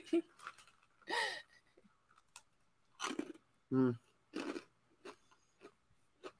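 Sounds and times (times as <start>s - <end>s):
biting a hard crunchy cookie: 2.2s - 3.4s, 4.3s - 6.3s.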